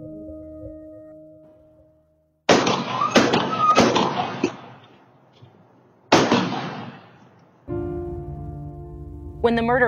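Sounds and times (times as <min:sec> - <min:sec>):
gunshots outdoors in a neighborhood on surveillance camera audio: 0:02.5 - 0:05.1, 0:06.1 - 0:07.4
speech: 0:09.4 - 0:09.8.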